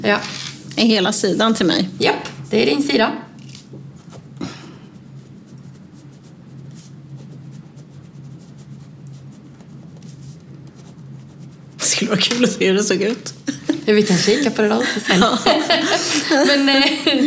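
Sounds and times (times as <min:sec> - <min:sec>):
speech: 0:00.0 - 0:03.2, 0:12.1 - 0:17.2
low steady hum: 0:00.0 - 0:17.2
pen scratching on paper: 0:04.9 - 0:12.5
laughter: 0:13.4 - 0:17.2.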